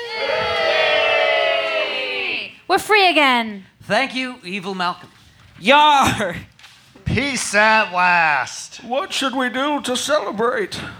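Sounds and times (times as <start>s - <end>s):
group of voices cheering: 0.0s - 2.7s
speech: 2.7s - 6.5s, 7.1s - 10.9s.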